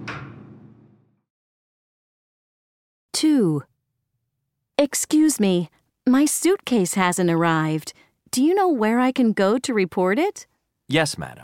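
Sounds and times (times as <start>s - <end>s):
elevator doors sliding open at the second floor: 0.0s - 1.0s
speech: 3.2s - 3.7s, 4.8s - 11.4s.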